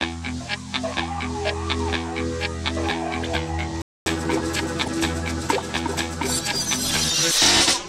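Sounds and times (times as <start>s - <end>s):
E minor guitar riff: 0.0s - 6.8s.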